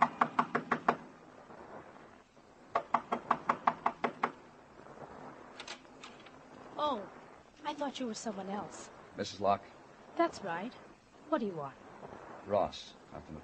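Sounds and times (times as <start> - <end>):
knocking on a door: 0.0 - 1.0, 2.7 - 4.4
speech: 7.8 - 11.8, 12.5 - 13.4.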